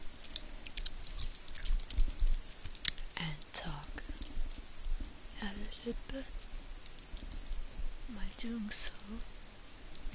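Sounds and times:
low hum: 0:00.0 - 0:10.1
chewing on chewy candies: 0:00.2 - 0:04.7
speech: 0:05.8 - 0:06.5, 0:08.1 - 0:09.3.

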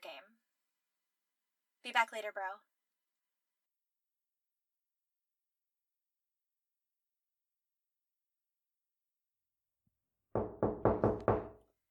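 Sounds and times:
speech: 0:01.8 - 0:02.7
firm knocks on an unlocked wooden door: 0:10.4 - 0:11.6.

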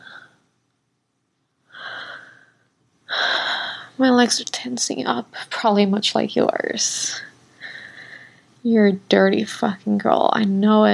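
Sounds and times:
warm breathing close to the listener's neck: 0:01.7 - 0:04.0, 0:07.5 - 0:08.6
speech: 0:04.0 - 0:07.3, 0:08.6 - 0:10.9.

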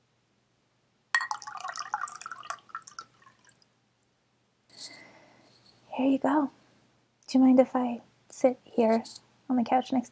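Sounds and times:
glass clink or set-down: 0:01.2 - 0:03.1
water pouring into a glass to be served as a drink: 0:01.2 - 0:03.7
speech: 0:06.0 - 0:06.6, 0:07.3 - 0:10.1.

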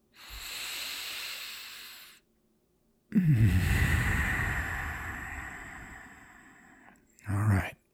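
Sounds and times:
slow deep breathing in and out: 0:00.0 - 0:02.3, 0:03.1 - 0:07.1
speech: 0:03.2 - 0:04.0.

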